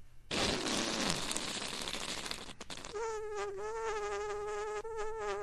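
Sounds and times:
video game whoopee cushion sound effect triggered by a handshake: 0:00.3 - 0:05.4.

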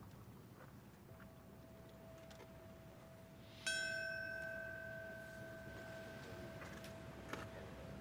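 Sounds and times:
bell strike at a September 11th commemoration ceremony: 0:01.7 - 0:07.9.

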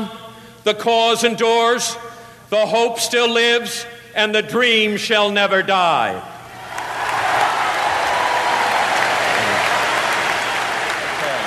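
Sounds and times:
speech: 0:00.0 - 0:06.3
large auditorium audience of delegates applauding and cheering after a campaign speech: 0:06.5 - 0:11.4.

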